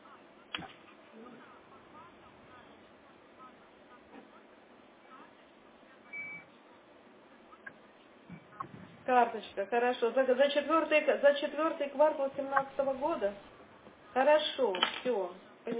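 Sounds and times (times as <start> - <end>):
faint indistinct voice sounds: 0.0 - 15.7
hissy phone-line background: 0.0 - 15.7
short high telephone call-waiting beep: 6.1 - 6.5
speech: 9.1 - 13.5, 14.1 - 15.7.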